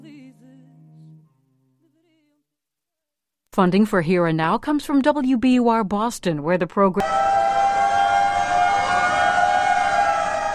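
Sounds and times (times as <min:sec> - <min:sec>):
speech: 0:03.6 - 0:07.3
several overlapping sirens wailing: 0:07.0 - 0:10.5.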